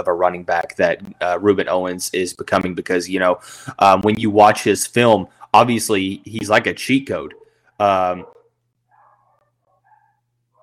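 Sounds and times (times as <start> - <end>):
speech: 0.0 - 8.4
dogs barking upstairs: 7.2 - 10.6.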